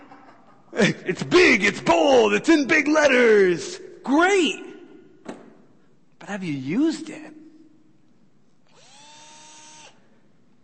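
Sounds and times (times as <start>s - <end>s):
laughter: 0.0s - 1.2s
speech: 0.8s - 4.7s, 6.3s - 7.4s
cordless power drill whirring: 8.7s - 10.0s.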